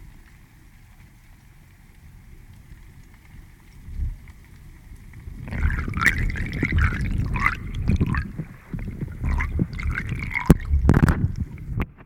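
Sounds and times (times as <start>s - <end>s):
river water gurgling and lapping: 3.8s - 12.0s
Missouri River water flowing: 5.5s - 11.8s.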